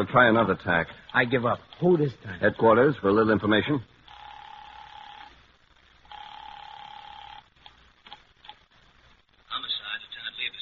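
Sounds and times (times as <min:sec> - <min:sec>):
speech: 0:00.0 - 0:04.0
telephone line ringing with long steady buzzing tones: 0:04.1 - 0:05.3, 0:06.1 - 0:07.5.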